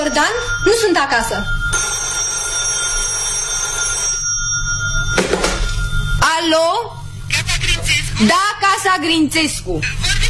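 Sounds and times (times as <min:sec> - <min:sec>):
telephone bell ringing with bright metallic tone: 0:00.0 - 0:07.2
speech: 0:00.1 - 0:01.9, 0:06.3 - 0:07.5, 0:08.2 - 0:10.2.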